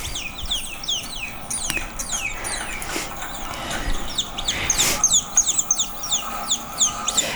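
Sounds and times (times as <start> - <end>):
lab colony naked mole-rats chirping played from a video: 0.0 - 7.3.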